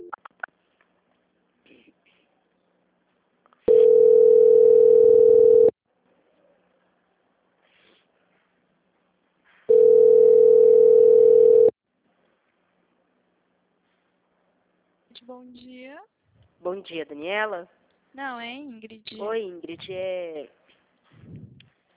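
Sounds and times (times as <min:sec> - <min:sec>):
long steady telephone line tones during a call transfer: 0:03.7 - 0:05.8, 0:09.7 - 0:11.8
speech: 0:16.8 - 0:20.6.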